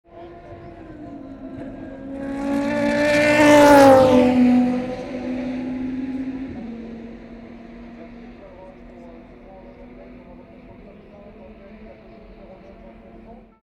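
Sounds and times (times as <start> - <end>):
Porsche RS Spyder race car engine at Tertre Rouge: 0.1 - 13.6.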